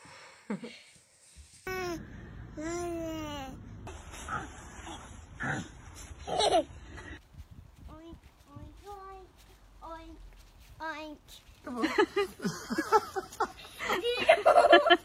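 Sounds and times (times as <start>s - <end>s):
children babbling and giggling: 1.7s - 3.6s, 7.8s - 15.0s.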